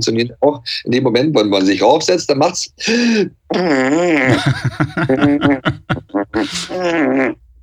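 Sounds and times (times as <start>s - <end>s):
speech: 0.0s - 7.4s
mouth fart imitations with buzzy raspberry sounds: 3.4s - 7.5s
laughter: 4.3s - 6.8s.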